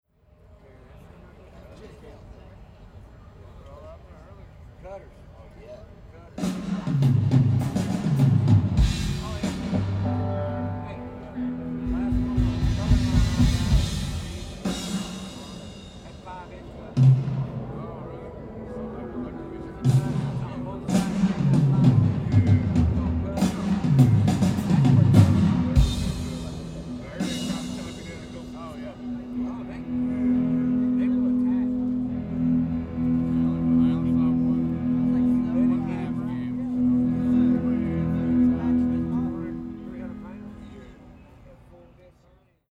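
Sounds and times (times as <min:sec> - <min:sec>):
drum soundcheck: 0:06.4 - 0:40.7.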